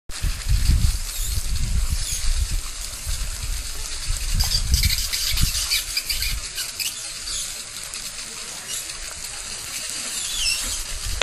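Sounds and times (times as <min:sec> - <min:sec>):
water sound: 0:00.1 - 0:11.2.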